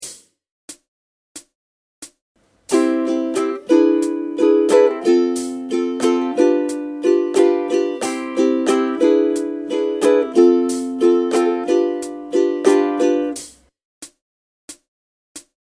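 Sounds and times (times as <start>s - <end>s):
ukulele strumming: 2.7s - 13.6s.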